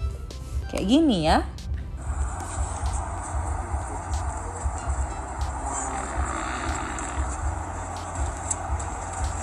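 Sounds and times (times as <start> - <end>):
speech: 0.7 - 1.6
long deep elephant fart: 2.1 - 9.4.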